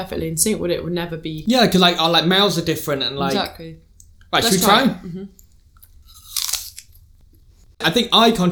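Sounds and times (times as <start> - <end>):
speech: 0.0 - 5.4, 7.8 - 8.4
two people biting and crunching crisp apples: 5.8 - 7.1.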